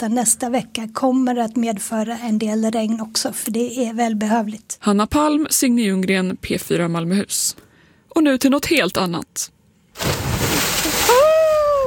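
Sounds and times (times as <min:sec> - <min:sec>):
speech: 0:00.0 - 0:10.2
person plunging into the sea in Malmö: 0:10.0 - 0:11.8.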